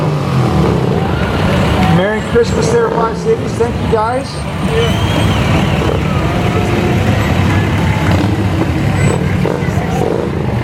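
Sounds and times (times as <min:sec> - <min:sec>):
Harley motorcycles riding past in a Christmas parade: 0:00.0 - 0:10.6
speech: 0:02.4 - 0:07.2.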